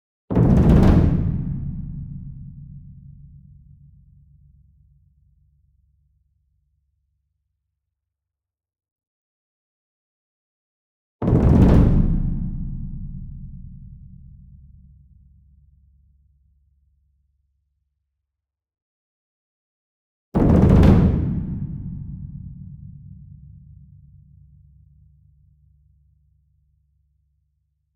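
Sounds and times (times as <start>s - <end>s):
medium taiko drum roll: 0.3s - 3.3s, 11.2s - 14.5s, 20.4s - 23.3s
concert bass drum roll: 0.4s - 2.8s, 20.4s - 22.7s.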